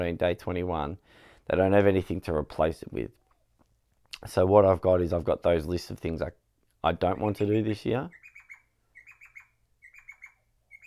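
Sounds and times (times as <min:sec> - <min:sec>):
speech: 0:00.0 - 0:03.2, 0:04.2 - 0:08.2
bird chirping: 0:07.0 - 0:10.8.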